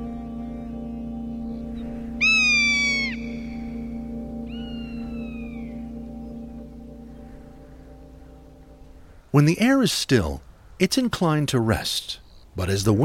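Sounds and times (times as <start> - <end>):
steady low hum: 0.0 - 9.4
rough-legged hawk screaming call: 1.4 - 5.8
speech: 9.4 - 13.0.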